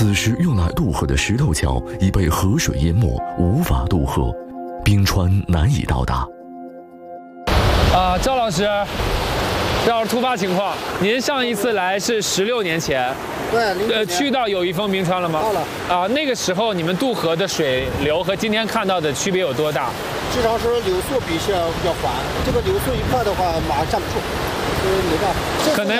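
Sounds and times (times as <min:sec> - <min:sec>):
person talking: 0:00.0 - 0:06.3
fast-flowing river water rushing in a steady roar: 0:07.5 - 0:25.9.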